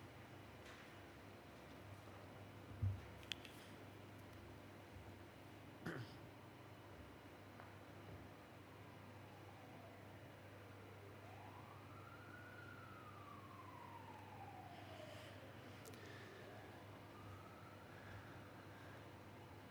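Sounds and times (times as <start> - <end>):
steady low hum: 0.0 - 19.6
emergency vehicle siren wailing outside: 8.6 - 19.6.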